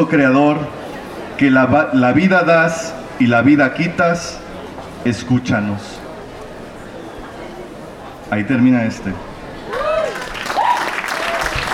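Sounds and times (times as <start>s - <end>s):
speech: 0.0s - 0.8s, 1.4s - 4.4s, 5.0s - 6.0s, 8.3s - 9.3s
audience applause for a participant: 9.7s - 11.7s.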